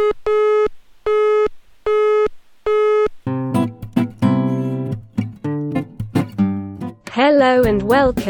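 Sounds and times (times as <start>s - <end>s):
telephone busy signal beeps: 0.0s - 3.1s
bright busy music: 3.4s - 8.2s
speech: 7.2s - 8.2s.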